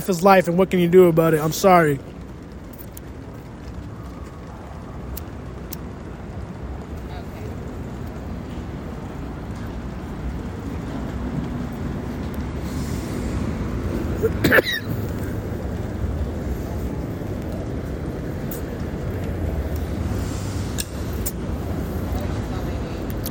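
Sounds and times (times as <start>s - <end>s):
speech: 0.0s - 2.2s
steady low rumble: 0.0s - 23.3s
quick inhale: 12.6s - 13.4s
person coughing after a quick inhale: 14.2s - 15.0s.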